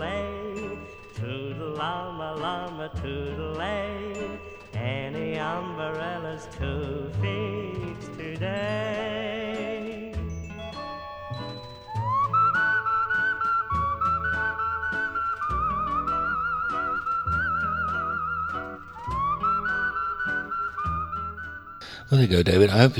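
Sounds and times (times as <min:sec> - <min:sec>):
person whistling a bright sustained melody with light vibrato: 0:00.0 - 0:22.1
bouncy instrumental accompaniment with tinkling bell-like notes: 0:00.0 - 0:22.9
speech: 0:01.8 - 0:04.1, 0:05.4 - 0:08.9, 0:22.2 - 0:22.9.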